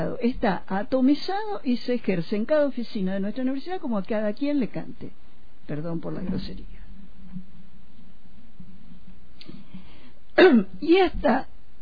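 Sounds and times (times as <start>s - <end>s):
speech: 0.1s - 7.4s, 10.4s - 11.5s
harsh cough close to the microphone: 10.4s - 10.7s.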